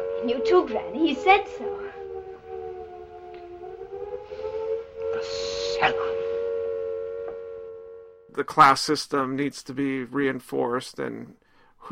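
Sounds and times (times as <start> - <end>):
air raid siren wailing: 0.0 - 8.7
speech: 0.2 - 1.8, 8.4 - 11.9.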